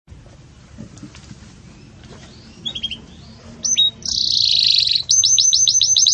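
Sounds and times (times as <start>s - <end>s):
Belgian canary bell-like song: 1.5s - 6.1s.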